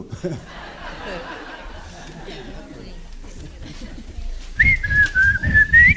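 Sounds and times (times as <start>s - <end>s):
laughter: 0.0s - 5.7s
speech: 0.1s - 1.4s
person whistling a short tune: 4.6s - 5.9s.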